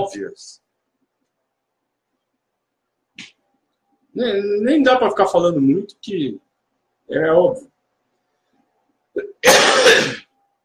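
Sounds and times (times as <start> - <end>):
speech: 0.0 - 0.6, 4.2 - 6.4, 7.1 - 7.7
person coughing harshly: 9.2 - 10.3.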